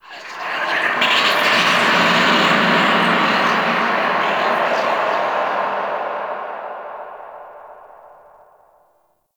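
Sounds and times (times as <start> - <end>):
people whispering: 0.0 - 8.1.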